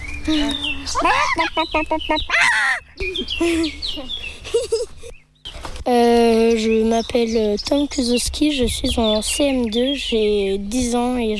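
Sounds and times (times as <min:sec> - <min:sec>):
speech: 0:00.2 - 0:05.2, 0:05.9 - 0:11.3
child imitating a hen cackling after laying an egg: 0:00.9 - 0:01.6, 0:02.3 - 0:02.8.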